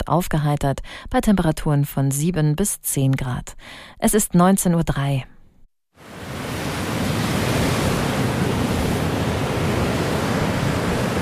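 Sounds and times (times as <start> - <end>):
speech: 0.1 - 5.3
steady wind on the Bornholm coast on a cold wet February day: 5.9 - 11.2
rushing surf on the Baltic Sea coast of Bornholm: 6.0 - 11.2.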